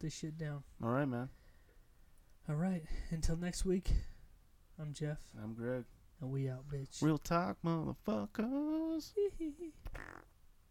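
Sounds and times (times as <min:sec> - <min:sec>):
speech: 0:00.0 - 0:01.4, 0:02.4 - 0:04.1, 0:04.8 - 0:10.3
fake fart sound: 0:09.8 - 0:10.3.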